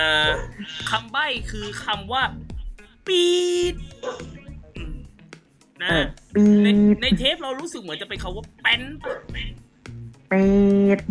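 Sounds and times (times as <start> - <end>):
speech: 0.0 - 2.4, 3.1 - 4.4, 5.8 - 9.6, 10.3 - 11.0
dog barking at home: 0.2 - 0.6, 4.0 - 4.4, 9.0 - 9.4.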